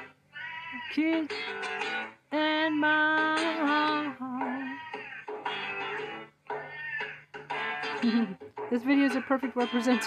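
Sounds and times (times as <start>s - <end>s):
cat meowing: 0.4s - 1.0s, 4.5s - 5.3s, 6.7s - 7.2s
speech: 0.9s - 4.3s, 8.0s - 10.0s.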